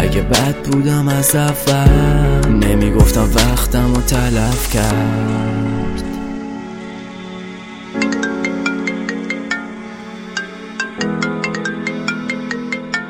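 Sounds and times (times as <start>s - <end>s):
speech: 0.2s - 5.7s
mobile phone ringtone: 7.9s - 13.0s.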